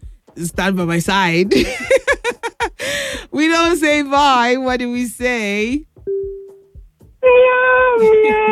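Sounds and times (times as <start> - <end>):
speech: 0.4 - 2.0, 3.4 - 5.9, 7.2 - 8.5
laughter: 1.5 - 2.8, 8.0 - 8.5
person imitating cat meow: 7.2 - 8.5.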